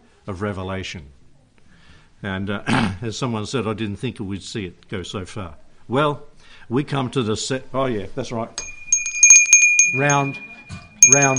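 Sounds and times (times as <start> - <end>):
speech: 0.2 - 1.2, 2.2 - 8.7, 9.9 - 11.3
hand bell ringing: 8.6 - 11.3.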